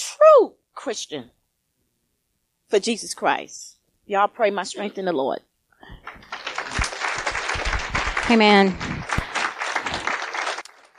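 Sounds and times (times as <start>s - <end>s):
speech: 0.4s - 1.4s, 2.7s - 6.0s, 8.3s - 9.0s
crowd applauding: 5.9s - 10.9s.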